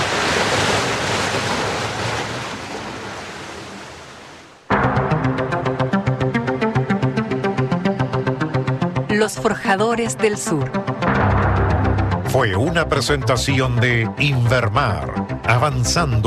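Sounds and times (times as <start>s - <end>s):
ocean waves crashing on rocks below a pier: 0.0s - 4.6s
rhythmic pulsing music: 4.7s - 16.2s
speech: 9.2s - 11.0s, 12.3s - 16.2s.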